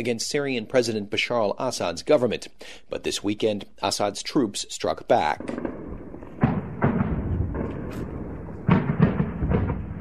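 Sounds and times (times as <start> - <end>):
speech: 0.0 - 5.7
loud explosions: 5.3 - 9.9
machine gun fire: 5.4 - 9.9
sharp thuds: 5.4 - 9.9.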